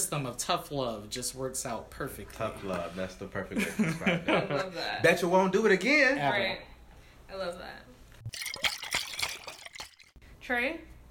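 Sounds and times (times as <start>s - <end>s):
speech: 0.0s - 6.7s, 7.3s - 7.9s, 10.5s - 10.9s
wine glugging and splashing into a glass: 8.3s - 10.2s.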